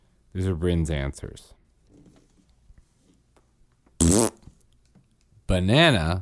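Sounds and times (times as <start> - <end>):
speech: 0.4 - 1.6, 5.5 - 6.2
buzzy fart noise blown with the lips: 4.0 - 4.5.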